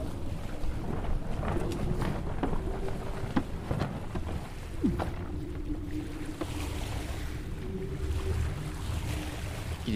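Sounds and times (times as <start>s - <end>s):
low humming drone aboard a sailboat: 0.0s - 9.9s
wind and water rushing aboard a sailboat under sail: 0.0s - 9.9s
sailboat rigging creaking and knocking: 0.9s - 6.6s.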